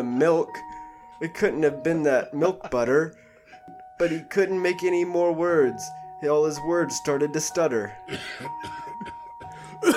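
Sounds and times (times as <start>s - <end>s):
speech: 0.2s - 8.8s
person coughing with short hacking bursts: 8.1s - 9.9s.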